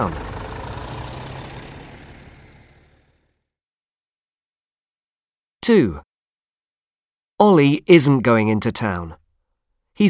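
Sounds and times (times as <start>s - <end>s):
speech: 0.0s - 0.2s, 5.6s - 6.1s, 7.4s - 9.2s
large bus engine idling with a low rumble: 0.0s - 3.4s.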